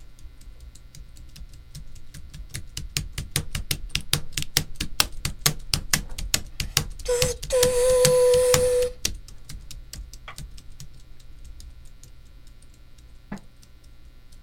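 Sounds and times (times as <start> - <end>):
non-working computer keyboard tapped to imitate a train: 0.2 - 14.4
sustained whistle-like tone: 7.1 - 9.0.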